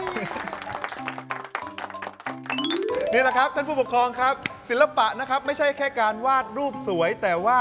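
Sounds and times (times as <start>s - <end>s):
crowd applauding: 0.0s - 3.4s
sustained musical tone: 2.5s - 4.1s
speech: 3.1s - 7.5s.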